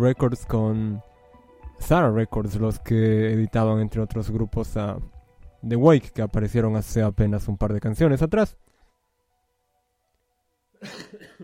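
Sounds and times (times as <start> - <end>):
speech: 0.0 - 1.1, 1.8 - 8.7, 10.8 - 11.4
harsh cough: 10.8 - 11.4.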